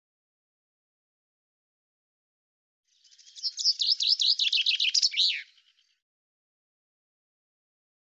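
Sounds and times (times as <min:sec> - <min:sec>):
common chaffinch singing: 0:03.0 - 0:05.9.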